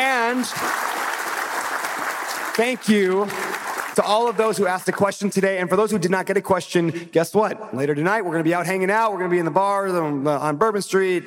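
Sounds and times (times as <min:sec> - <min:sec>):
audience applause for panelists: 0:00.0 - 0:05.3
speech: 0:00.3 - 0:00.9, 0:02.6 - 0:03.4, 0:04.0 - 0:11.2.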